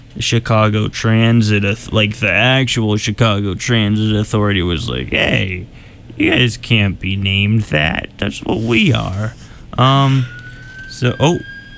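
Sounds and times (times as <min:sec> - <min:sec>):
speech: 0:00.2 - 0:10.4, 0:11.0 - 0:11.5
police siren of a vehicle driving by: 0:10.0 - 0:11.7.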